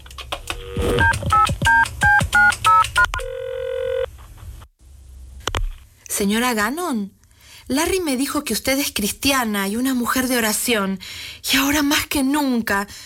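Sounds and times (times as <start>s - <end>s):
long steady telephone tone: 0.5s - 4.1s
telephone dialing dual-tone beeps: 0.9s - 4.1s
hum: 3.1s - 5.9s
speech: 6.2s - 7.2s, 7.7s - 13.0s.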